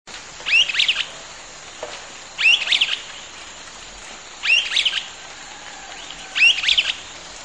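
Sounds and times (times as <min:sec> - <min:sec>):
steady background hiss: 0:00.1 - 0:07.4
streaked flycatcher Myiodynastes maculatus solitarius squeaky calls: 0:00.4 - 0:01.1, 0:02.4 - 0:03.4, 0:04.4 - 0:05.2, 0:05.9 - 0:07.1.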